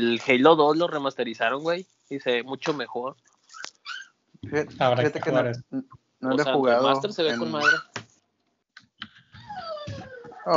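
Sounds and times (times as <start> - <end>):
speech: 0.0 - 3.7, 4.4 - 8.0
young female puppy whining: 3.5 - 4.2, 9.4 - 10.5.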